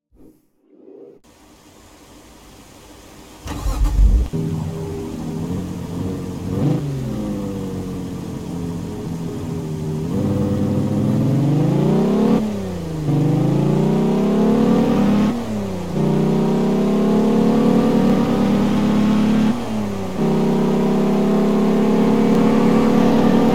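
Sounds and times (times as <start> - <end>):
Saab 9-3 Turbo X car engine: 3.4 - 23.5.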